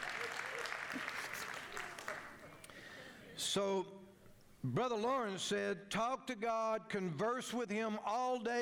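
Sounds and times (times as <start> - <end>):
thin scattered hand clapping from part of a crowd: 0.0 - 2.6
speech: 3.6 - 8.6.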